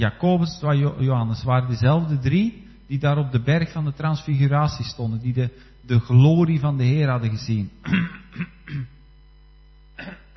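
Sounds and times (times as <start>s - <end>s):
speech: 0.0s - 9.0s
person clearing throat: 7.8s - 9.0s, 10.0s - 10.3s.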